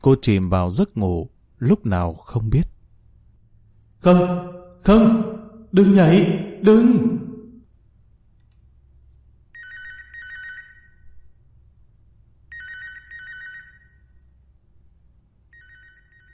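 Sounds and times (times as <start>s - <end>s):
speech: 0.0s - 2.7s, 4.0s - 7.2s
low steady hum: 0.0s - 16.3s
telephone ringing in a bedroom: 9.5s - 11.2s, 12.5s - 14.3s, 15.5s - 16.3s.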